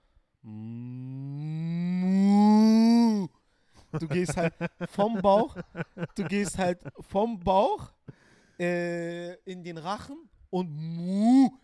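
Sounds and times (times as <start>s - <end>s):
speech: 0.4s - 0.7s, 3.9s - 8.0s, 8.6s - 11.6s
human voice imitating a cow's moo as a yodeling exercise: 0.4s - 3.3s
laughter: 3.9s - 7.2s.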